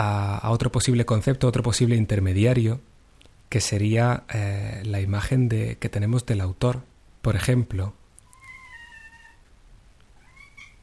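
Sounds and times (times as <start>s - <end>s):
speech: 0.0s - 2.9s, 3.5s - 8.0s
low hum: 0.0s - 10.8s
female pet cat meowing: 8.2s - 9.5s, 10.2s - 10.8s.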